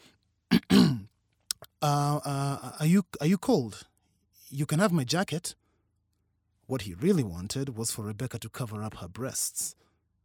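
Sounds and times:
man clearing his throat: 0.5s - 1.1s
speech: 1.8s - 3.9s, 4.5s - 5.6s, 6.7s - 9.8s.

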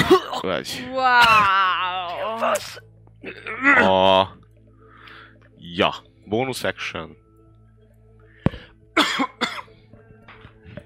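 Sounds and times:
person coughing: 0.0s - 0.6s, 9.0s - 9.7s
speech: 0.4s - 1.6s, 2.4s - 4.4s, 5.6s - 7.2s.

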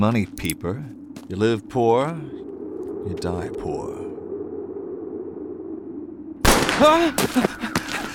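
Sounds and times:
speech: 0.0s - 2.4s, 3.0s - 4.0s, 6.8s - 7.7s
pistol shot: 6.5s - 6.9s.

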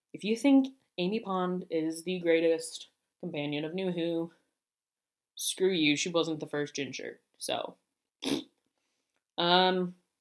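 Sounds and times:
speech: 0.1s - 4.4s, 5.4s - 8.5s, 9.4s - 10.0s
person imitating a fart by blowing a raspberry with the tongue: 8.2s - 8.5s.

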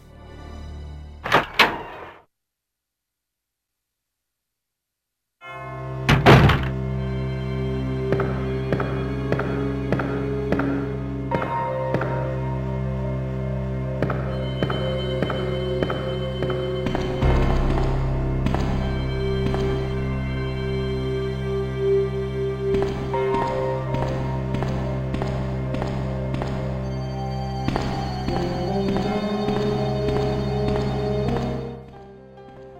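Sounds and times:
moody video game police station background music with soft pulsing beats: 0.0s - 2.1s, 5.4s - 32.7s
brief thud: 6.1s - 6.8s, 16.9s - 20.4s.

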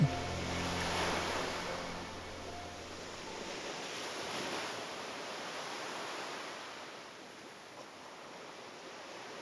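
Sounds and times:
ocean waves breaking on the shore: 0.0s - 7.0s.

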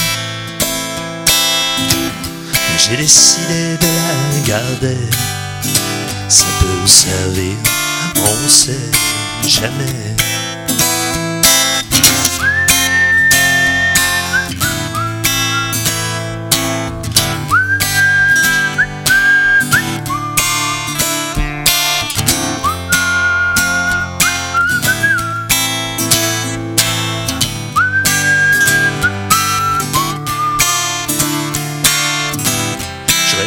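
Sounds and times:
full steady musical backing: 0.0s - 33.4s
speech: 2.8s - 10.5s
person whistling a tune: 12.3s - 16.2s, 17.4s - 21.4s, 22.4s - 25.8s, 27.7s - 31.1s.

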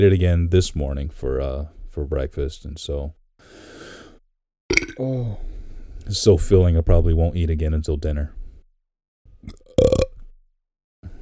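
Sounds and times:
speech: 0.0s - 3.7s, 4.7s - 8.4s, 9.4s - 9.9s
person burping: 4.7s - 5.1s, 9.5s - 10.1s.

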